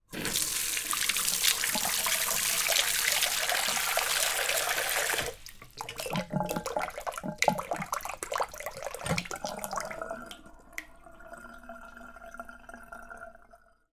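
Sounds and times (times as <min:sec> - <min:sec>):
household bathroom sink tap filling: 0:00.1 - 0:13.5.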